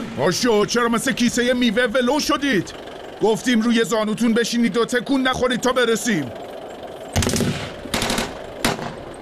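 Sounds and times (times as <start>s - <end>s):
speech: 0.2s - 6.5s
machine gun fire: 7.1s - 9.1s.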